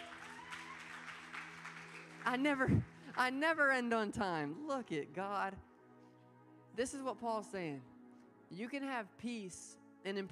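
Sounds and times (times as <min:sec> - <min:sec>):
crowd applauding: 0:00.0 - 0:03.0
speech: 0:02.2 - 0:05.7, 0:06.8 - 0:07.9, 0:08.5 - 0:10.2.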